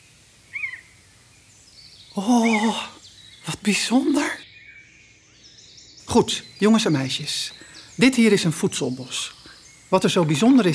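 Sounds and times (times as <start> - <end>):
common buzzard mewing call: 0.5 - 1.0, 2.1 - 3.0
speech: 2.2 - 2.9, 3.6 - 4.4, 6.1 - 10.7.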